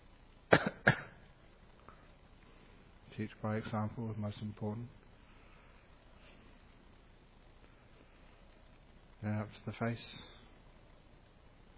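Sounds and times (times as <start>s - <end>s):
dry coughs: 0.5s - 1.3s
speech: 3.2s - 5.0s, 9.2s - 10.4s.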